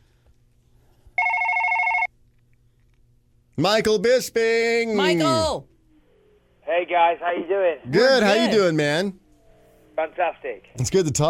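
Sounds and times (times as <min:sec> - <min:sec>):
telephone ringing: 0:01.2 - 0:02.1
speech: 0:03.6 - 0:05.7, 0:06.7 - 0:09.2, 0:10.0 - 0:11.2.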